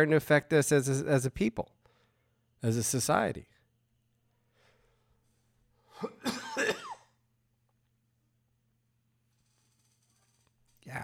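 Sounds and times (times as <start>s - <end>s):
speech: 0.0s - 1.8s, 2.6s - 3.6s, 6.0s - 6.4s
person clearing a scratchy throat: 5.9s - 7.2s
person coughing: 5.9s - 7.2s.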